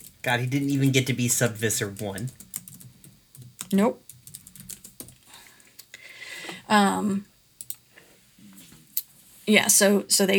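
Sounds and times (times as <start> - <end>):
computer keyboard typing: 0.0 - 5.9, 7.6 - 7.8
speech: 0.2 - 2.4, 3.7 - 4.0, 6.7 - 7.3, 9.5 - 10.3.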